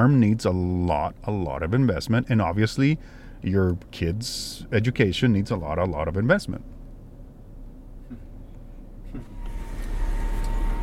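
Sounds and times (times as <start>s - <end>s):
speech: 0.0s - 6.8s
car idling and creeping forward toward school gates: 0.0s - 10.8s
faint mechanical whir: 0.0s - 10.8s.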